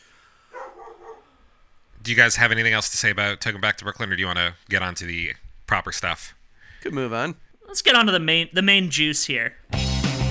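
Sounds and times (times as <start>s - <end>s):
small dog yipping: 0.6s - 1.3s
speech: 2.0s - 9.8s.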